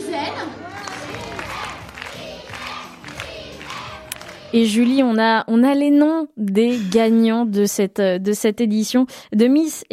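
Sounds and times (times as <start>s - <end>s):
crowd cheering and shouting at a retirement home pageant show: 0.0s - 4.6s
speech: 4.5s - 9.9s.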